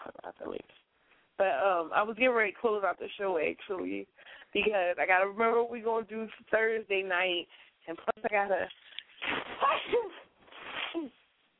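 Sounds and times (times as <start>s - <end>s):
speech: 0.5s - 0.8s, 1.4s - 10.2s
person sneezing loudly: 9.3s - 11.2s.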